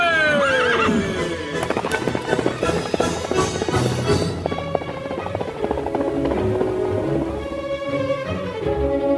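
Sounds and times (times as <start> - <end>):
horse whinnying: 0.1 - 7.5
galloping horse hooves: 0.7 - 9.0.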